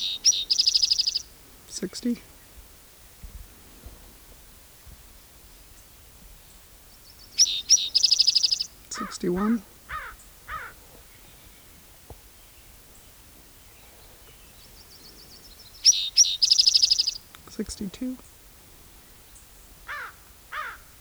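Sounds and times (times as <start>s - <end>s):
rapid high chirping: 0.0s - 2.2s, 7.3s - 9.6s, 15.6s - 17.9s
raven calling: 0.0s - 2.3s, 7.4s - 11.4s, 14.7s - 17.7s, 19.7s - 21.0s
speech: 1.8s - 2.3s, 9.2s - 9.7s, 17.6s - 18.4s.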